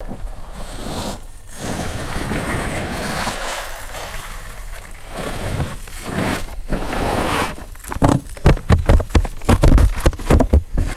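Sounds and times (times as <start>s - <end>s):
kayak sliding past on crunchy snow: 0.0s - 10.9s.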